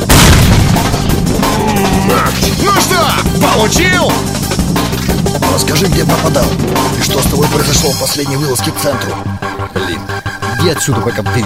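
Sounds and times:
grenade explosion in a video game: 0.0 - 3.2
speech: 3.6 - 4.4, 5.6 - 11.4.

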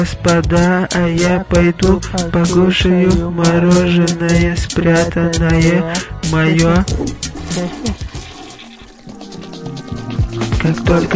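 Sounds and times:
speech: 0.0 - 8.1, 10.6 - 11.1
brief voice-like sounds: 5.9 - 8.1
toilet flushing after lever is pressed: 6.4 - 11.1.

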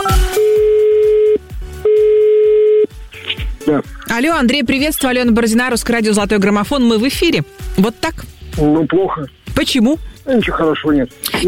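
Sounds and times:
ringback tone of an outgoing telephone call: 0.0 - 2.9
faint rhythmic background: 0.0 - 11.4
speech: 3.7 - 11.4.

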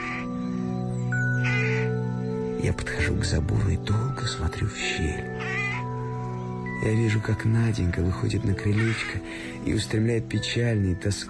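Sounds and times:
rooks cawing noisily at roost: 0.0 - 2.6, 5.2 - 6.7, 8.6 - 9.6
speech: 2.6 - 5.6, 6.8 - 11.2.

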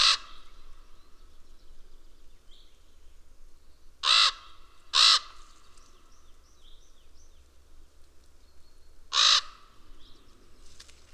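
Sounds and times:
raven giving harsh caws: 0.0 - 0.4, 4.0 - 5.4, 9.1 - 9.8.

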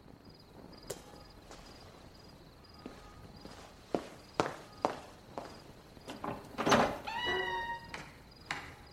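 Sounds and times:
slow footsteps thudding across a floor: 0.0 - 5.8
faint steady chirp of insects: 0.0 - 8.9
door creaking open with a drawn-out squeal: 6.0 - 8.9.

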